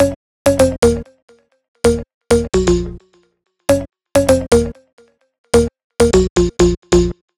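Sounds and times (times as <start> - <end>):
house bass loop in B flat minor: 0.0 - 1.0, 1.9 - 3.0, 3.7 - 4.7, 5.6 - 7.2.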